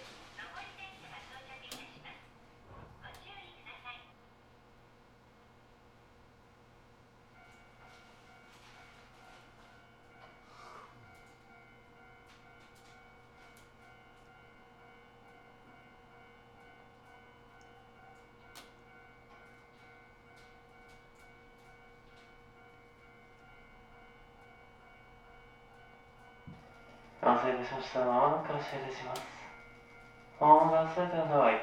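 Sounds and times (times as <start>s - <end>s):
train passing with clattering, electric whine and low rumble: 0.0s - 4.0s, 11.1s - 31.6s
speech: 27.2s - 29.4s, 30.4s - 31.6s.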